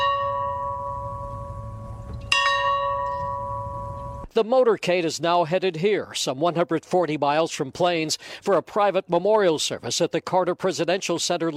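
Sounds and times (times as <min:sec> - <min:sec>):
farm bell ringing outdoors: 0:00.0 - 0:04.3
speech: 0:04.4 - 0:11.5.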